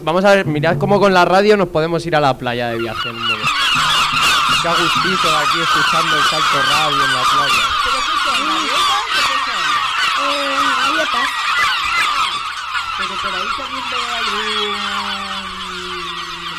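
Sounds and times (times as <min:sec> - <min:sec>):
speech: 0:00.0 - 0:03.5, 0:04.6 - 0:07.9
seabirds calling on a beach: 0:00.0 - 0:16.5
laughter: 0:02.7 - 0:16.5.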